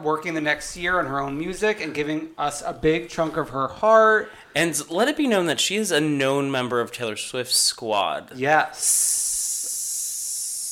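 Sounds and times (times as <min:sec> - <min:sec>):
speech: 0:00.0 - 0:09.2
sharp snake hiss sound effect: 0:08.8 - 0:10.6.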